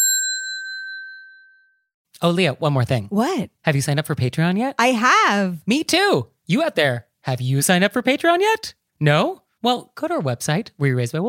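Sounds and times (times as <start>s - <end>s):
single clear bell ding: 0.0s - 1.8s
speech: 2.2s - 11.2s.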